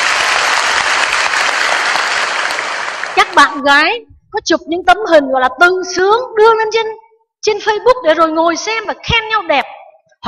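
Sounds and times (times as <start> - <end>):
crowd applauding at a monk's talk to young people: 0.0 - 3.4
speech: 3.2 - 10.2.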